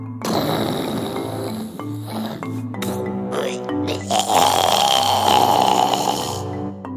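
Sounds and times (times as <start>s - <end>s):
deeply sleeping dinosaur snoring loudly: 0.2s - 6.7s.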